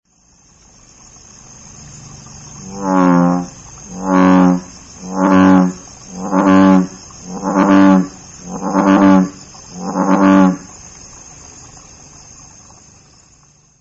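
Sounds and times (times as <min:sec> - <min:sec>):
ushigaeru bullfrog calling: 0:01.7 - 0:10.7.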